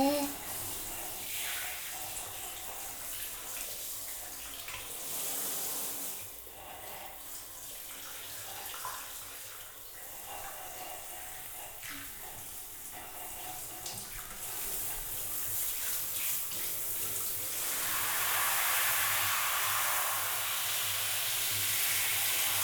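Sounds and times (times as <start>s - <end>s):
hot water pouring over hair during a hair wash: 0.0s - 6.4s, 14.3s - 22.6s.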